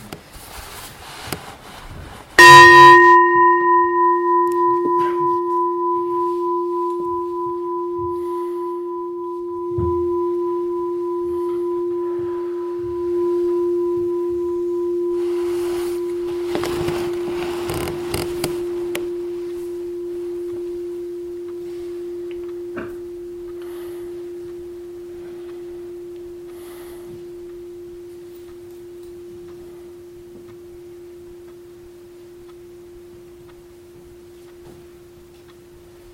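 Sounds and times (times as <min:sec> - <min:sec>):
faint rustling: 0:00.0 - 0:31.8
meditation bell struck and ringing: 0:02.4 - 0:36.1.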